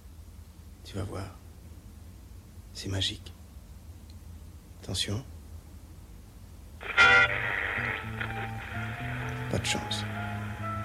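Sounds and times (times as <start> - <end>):
faint low hum: 0.0 - 10.8
speech: 0.9 - 1.4, 2.8 - 3.4, 4.8 - 5.3, 7.8 - 10.2
radio static with hiss and crackle: 6.8 - 10.8.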